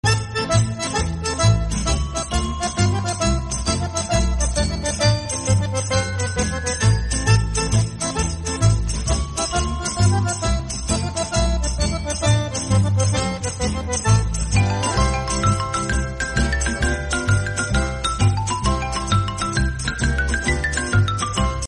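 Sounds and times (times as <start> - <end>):
village tarantella music: 0.0 - 21.6.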